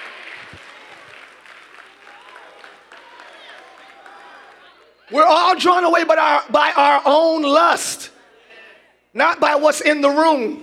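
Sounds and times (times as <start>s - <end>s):
large crowd clapping: 0.0s - 5.1s
speech: 5.1s - 8.1s, 9.2s - 10.6s.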